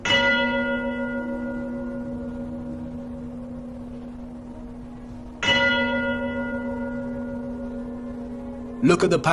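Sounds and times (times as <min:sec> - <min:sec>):
large church bell tolling inside a cathedral: 0:00.0 - 0:09.3
speech: 0:08.8 - 0:09.3.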